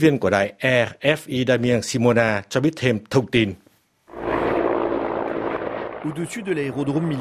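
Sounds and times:
speech: 0.0s - 3.6s, 6.0s - 7.1s
several helicopters flying very low over Kramatorsk airport in Ukraine bringing in troops: 4.1s - 7.1s.

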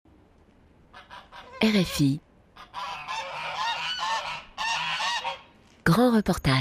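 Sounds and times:
hungry geese honking: 0.9s - 2.0s, 2.6s - 5.5s
speech: 1.6s - 2.2s, 5.9s - 6.5s.

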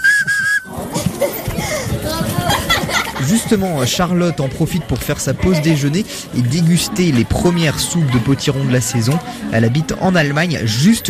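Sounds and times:
shrill whistle blown from a carved vegetable: 0.0s - 0.7s
bustle: 0.0s - 11.0s
laughter: 0.7s - 4.0s
speech: 3.2s - 11.0s.

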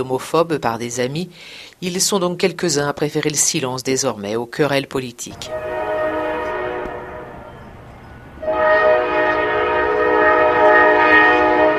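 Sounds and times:
speech: 0.0s - 5.8s
freight train horn droning blasts: 5.4s - 11.7s.

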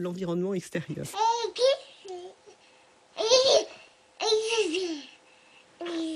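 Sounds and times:
speech: 0.0s - 1.8s
baby babbling and cooing in high sing-song vocal sounds: 1.1s - 2.6s, 3.2s - 5.2s, 5.8s - 6.1s.

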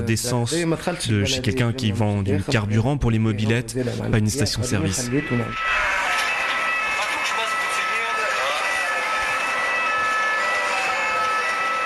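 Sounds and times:
speech: 0.0s - 6.0s
indistinct voices in a noisy street: 0.0s - 11.8s
ambulance siren wailing: 4.4s - 11.8s.

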